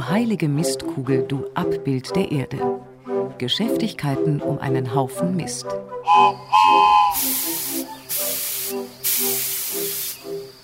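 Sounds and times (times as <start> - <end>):
speech: 0.1 - 7.5
thin high whistle tone of a small model steam locomotive: 6.1 - 10.5
small model steam locomotive hissing steam: 6.1 - 10.6.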